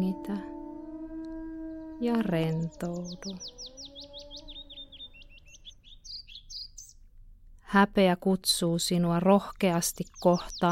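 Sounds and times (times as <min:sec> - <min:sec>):
speech: 0:00.0 - 0:00.5, 0:02.0 - 0:04.4, 0:07.7 - 0:10.7
low sustained tone: 0:00.0 - 0:05.4
birdsong in an old-growth forest: 0:00.0 - 0:07.2, 0:08.5 - 0:10.7.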